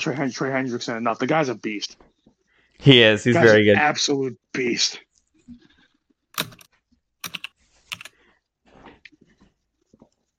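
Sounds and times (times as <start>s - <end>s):
speech: 0.0s - 2.1s, 2.8s - 5.6s
loud clacking of typing on a computer keyboard: 6.4s - 8.1s.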